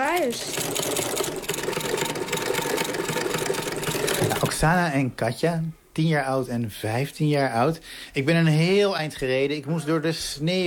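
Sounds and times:
several sewing machines running, sewing fabric toys: 0:00.0 - 0:04.7
speech: 0:00.2 - 0:00.7, 0:04.6 - 0:10.6.

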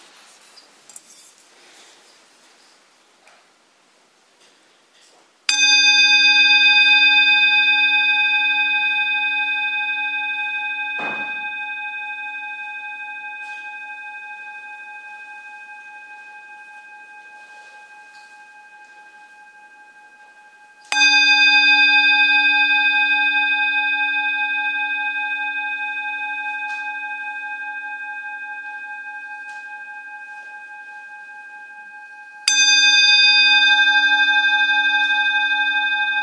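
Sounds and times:
meditation bell struck at the start of a dharma session: 0:05.5 - 0:36.2.

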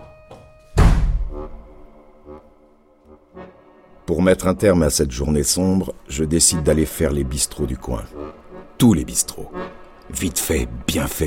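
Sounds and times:
bedroom door slamming shut: 0:00.8 - 0:01.4
speech: 0:04.1 - 0:11.2.

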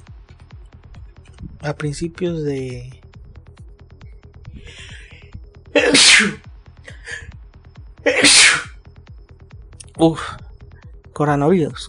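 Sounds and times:
speech: 0:01.6 - 0:03.0, 0:06.2 - 0:06.5, 0:10.0 - 0:10.4, 0:11.2 - 0:11.8
person sneezing: 0:05.8 - 0:06.4, 0:08.1 - 0:08.7.

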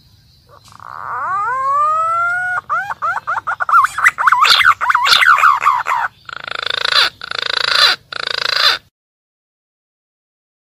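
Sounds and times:
green pigeon calling: 0:00.4 - 0:08.9.

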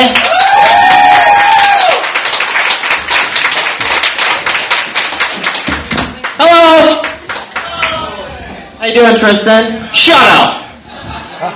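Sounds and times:
crowd applause: 0:00.0 - 0:08.2
speech: 0:09.0 - 0:10.6
laughter: 0:10.7 - 0:11.5.

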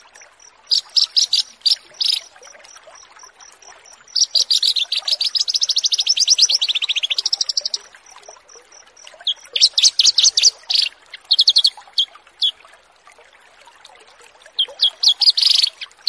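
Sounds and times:
Horsfield's bush lark song with high chirps and rapid trill: 0:00.7 - 0:02.4, 0:04.0 - 0:12.5, 0:14.6 - 0:16.0.

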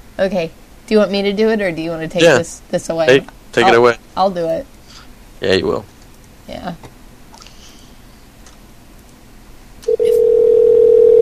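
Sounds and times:
speech: 0:00.2 - 0:04.8, 0:05.4 - 0:05.9, 0:06.5 - 0:06.9
telephone dial tone: 0:09.9 - 0:11.2.

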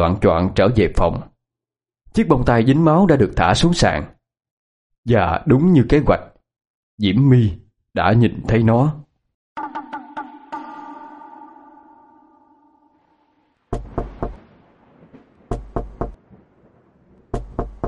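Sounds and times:
speech: 0:00.0 - 0:01.3, 0:02.1 - 0:04.1, 0:05.0 - 0:06.3, 0:07.0 - 0:09.0
ringing tone: 0:09.6 - 0:13.2
knocking on a door: 0:13.7 - 0:14.4, 0:15.5 - 0:16.2, 0:17.4 - 0:17.8.

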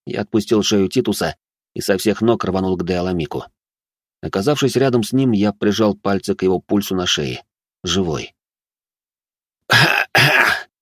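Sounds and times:
speech: 0:00.1 - 0:03.6, 0:04.2 - 0:08.4, 0:09.7 - 0:10.4
man coughing and spitting out soil after tumbling across the ground: 0:09.7 - 0:10.7.

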